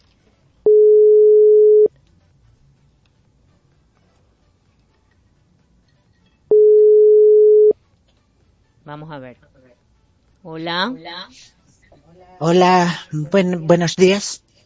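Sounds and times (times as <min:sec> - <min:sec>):
ringback tone of an outgoing phone call: 0:00.7 - 0:01.9, 0:06.5 - 0:07.8
speech: 0:08.9 - 0:09.6, 0:10.4 - 0:14.4.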